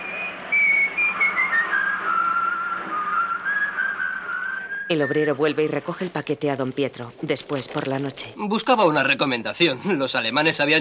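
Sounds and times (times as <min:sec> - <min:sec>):
man whistling a melody: 0:00.0 - 0:05.3
speech: 0:04.9 - 0:10.7.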